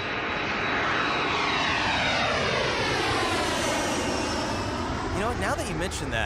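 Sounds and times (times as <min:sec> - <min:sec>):
airplane engine roaring as aircraft speeds down a runway: 0:00.0 - 0:06.2
speech: 0:05.3 - 0:06.2.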